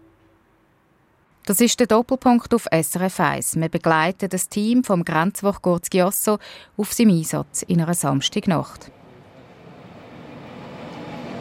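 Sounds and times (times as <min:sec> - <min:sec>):
speech: 0:01.5 - 0:09.0
Eurocity passenger train from Milan rumbling at a border station at night: 0:08.6 - 0:11.3.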